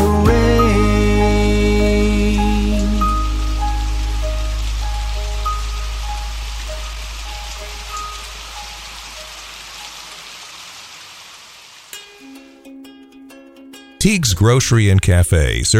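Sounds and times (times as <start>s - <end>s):
steady rain falling: 0.0s - 12.6s
low rumble: 0.3s - 9.0s
speech: 14.0s - 15.7s.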